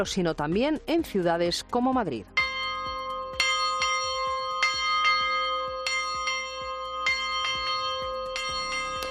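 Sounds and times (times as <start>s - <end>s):
speech: 0.0s - 2.4s
church bells ringing in an overlapping peal: 2.4s - 9.0s.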